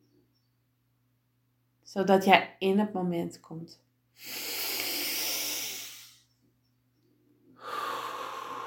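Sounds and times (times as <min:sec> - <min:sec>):
speech: 0:01.9 - 0:04.6
deep breath in and out: 0:04.2 - 0:06.3, 0:07.4 - 0:08.6.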